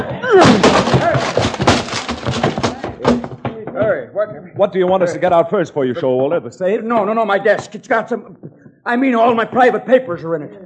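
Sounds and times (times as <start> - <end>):
excited voices shouting: 0.0 - 1.7
office door being busted down with heavy thuds and splintering: 0.3 - 3.6
speech: 4.2 - 10.6.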